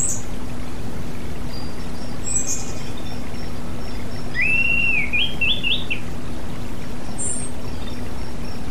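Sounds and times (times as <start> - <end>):
constant low hum: 0.0 - 8.6
Oriental magpie-robin singing a rising wavering whistled phrase: 4.3 - 6.0.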